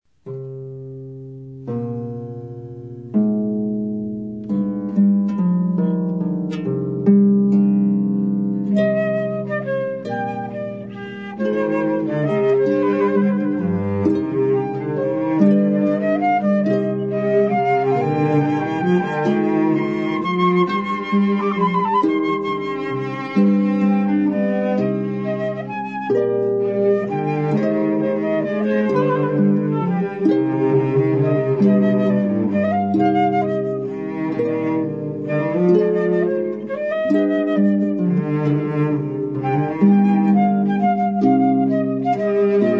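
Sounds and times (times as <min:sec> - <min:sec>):
classical trio with harp: 0:00.1 - 0:42.7.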